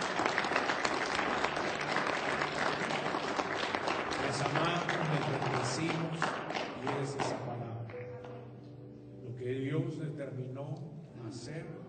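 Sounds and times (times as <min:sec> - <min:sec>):
audience applauding: 0:00.0 - 0:08.4
speech: 0:09.8 - 0:11.8.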